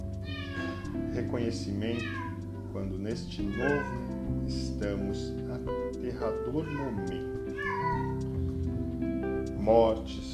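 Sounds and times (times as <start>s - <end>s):
cat meowing in a drawn-out wavering cry: 0.2s - 5.2s, 6.1s - 8.5s
speech: 1.3s - 7.4s, 9.6s - 10.3s.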